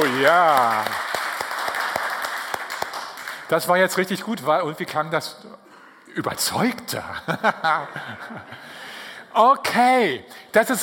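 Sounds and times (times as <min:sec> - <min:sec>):
men in an audience applauding: 0:00.0 - 0:04.0
speech: 0:00.2 - 0:01.0, 0:03.5 - 0:10.8
laughter: 0:07.1 - 0:08.8.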